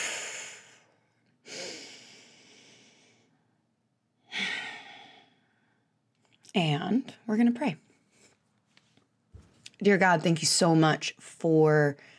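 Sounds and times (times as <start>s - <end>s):
deep breaths drawn and released: 0.0s - 6.0s
speech: 6.6s - 7.8s, 9.8s - 12.1s.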